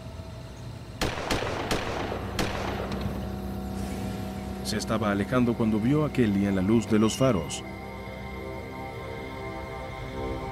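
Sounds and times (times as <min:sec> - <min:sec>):
steady low rumble: 0:00.0 - 0:10.5
sharp gunshots heard from a car on a side street: 0:01.0 - 0:03.2
speech: 0:04.7 - 0:07.8.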